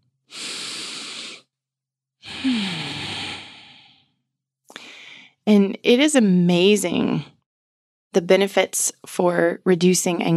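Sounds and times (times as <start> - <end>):
deep breath: 0.3 - 1.5, 2.2 - 5.4
speech: 5.5 - 7.3, 8.2 - 10.3.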